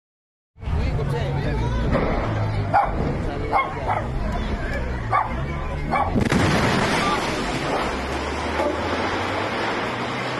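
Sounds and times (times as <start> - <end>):
people talking: 0.7 - 8.0
dogs barking: 2.7 - 4.3, 5.0 - 6.2
rushing roar: 2.7 - 10.3
gas station explosion: 6.1 - 8.5.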